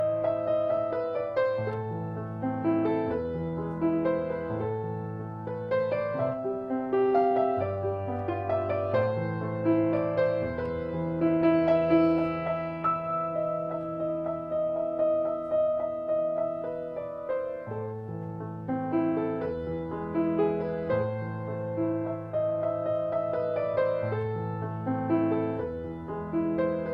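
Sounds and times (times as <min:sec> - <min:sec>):
piano piece: 0:00.0 - 0:26.9.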